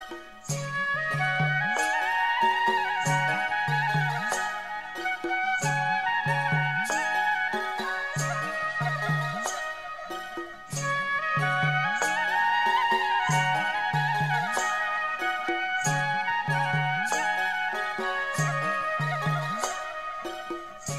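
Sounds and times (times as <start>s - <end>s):
flute ringtone: 0.0s - 20.9s.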